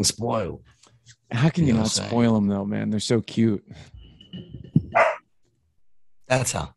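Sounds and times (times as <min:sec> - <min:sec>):
speech: 0:00.0 - 0:04.6, 0:06.3 - 0:06.7
female dog barking: 0:05.0 - 0:05.2.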